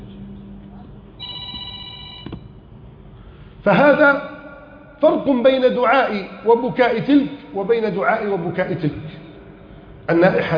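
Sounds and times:
telephone ringing: 0:01.2 - 0:02.6
speech: 0:03.6 - 0:04.4, 0:05.0 - 0:09.2, 0:10.1 - 0:10.5.

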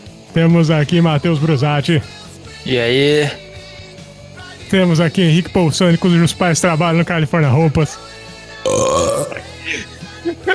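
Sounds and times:
speech: 0:00.3 - 0:03.4, 0:04.7 - 0:10.5
loud throaty burp: 0:08.6 - 0:09.6.

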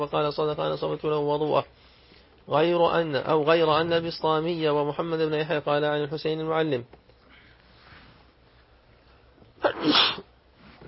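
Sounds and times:
speech: 0:00.0 - 0:01.9, 0:02.5 - 0:07.0
sneeze: 0:09.6 - 0:10.8.

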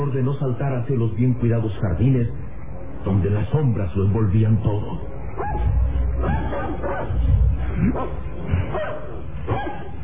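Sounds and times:
speech: 0:00.0 - 0:08.9
several dogs barking and yipping in well-kept gardens: 0:05.4 - 0:10.0.

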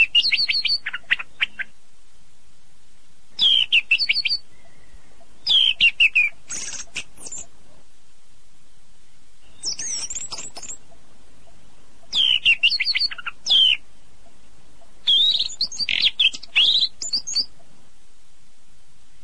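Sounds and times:
birds whistling and chirping: 0:00.0 - 0:01.7, 0:03.4 - 0:07.5, 0:09.4 - 0:13.9, 0:14.9 - 0:17.6.

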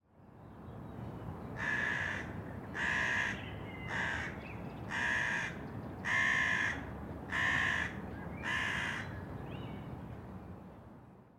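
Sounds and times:
crow cawing: 0:01.6 - 0:09.1.

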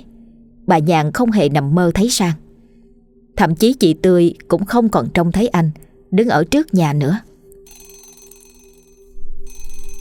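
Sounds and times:
speech: 0:00.7 - 0:02.4, 0:03.4 - 0:07.3
alarm clock ringing in the morning: 0:07.6 - 0:09.9.

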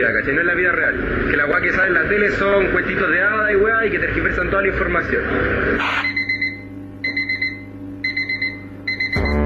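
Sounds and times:
speech: 0:00.1 - 0:06.1
alarm clock beeping: 0:06.0 - 0:09.4.

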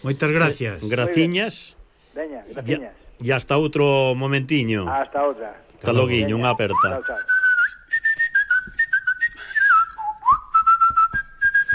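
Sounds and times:
speech: 0:00.0 - 0:07.4
lively melodic whistling: 0:06.5 - 0:11.7.

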